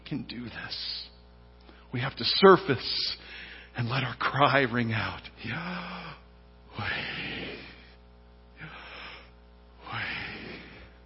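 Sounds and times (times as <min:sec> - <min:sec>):
speech: 0:00.1 - 0:01.1, 0:01.9 - 0:03.2, 0:03.8 - 0:06.2, 0:06.8 - 0:07.6
deep breathing in and out: 0:03.2 - 0:03.8, 0:05.6 - 0:08.0, 0:08.6 - 0:11.0.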